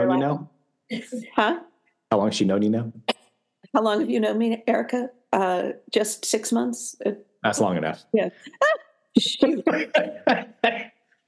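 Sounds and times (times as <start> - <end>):
speech: 0.3 - 3.1, 3.7 - 10.9
laughter: 8.5 - 11.0
harsh coughs: 9.4 - 10.9.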